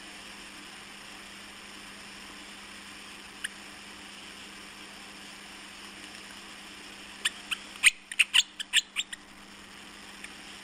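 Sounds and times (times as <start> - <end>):
willie wagtail chirping: 7.2 - 9.4.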